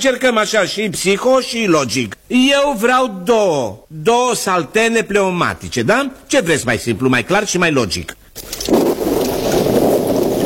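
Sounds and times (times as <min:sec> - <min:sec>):
speech: 0:00.0 - 0:08.8
autumn rain falling: 0:08.4 - 0:10.4.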